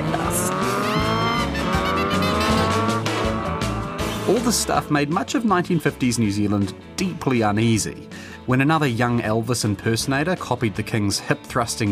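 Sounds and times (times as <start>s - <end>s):
motorbike engines racing and revving: 0.0s - 4.8s
motorbike tires squealing: 0.0s - 4.9s
speech: 4.4s - 11.9s.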